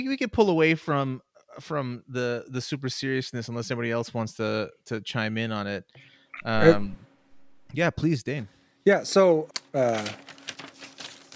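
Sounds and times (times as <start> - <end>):
speech: 0.0 - 7.1, 7.7 - 10.4
short voiced sound: 6.4 - 7.5
notebook paper rustling: 9.5 - 11.3.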